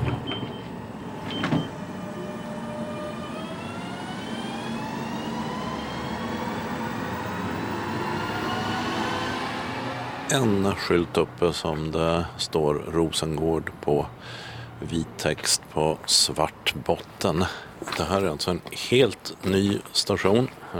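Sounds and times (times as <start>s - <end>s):
train doors thumping shut: 0.0s - 1.9s
electric train accelerating out of the station: 0.0s - 10.3s
speech: 10.3s - 20.7s.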